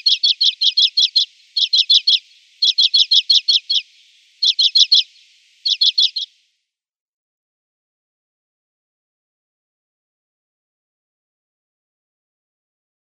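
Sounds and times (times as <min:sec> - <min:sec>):
Common Redpoll song: 0:00.0 - 0:06.4.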